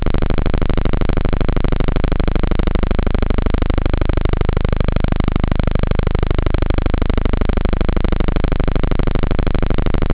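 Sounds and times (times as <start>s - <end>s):
terror synth bass: 0.0s - 10.1s.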